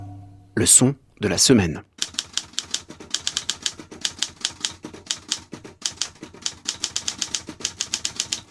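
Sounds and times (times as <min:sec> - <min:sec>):
speech: 0:00.6 - 0:01.9
mechanical typewriter typing: 0:02.0 - 0:08.5.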